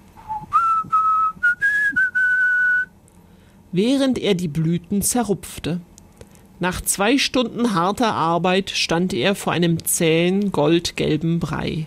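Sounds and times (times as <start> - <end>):
person whistling a short melody: 0.2 - 2.9
breaths between whistled phrases: 3.2 - 3.7
speech: 3.7 - 5.9, 6.6 - 11.8.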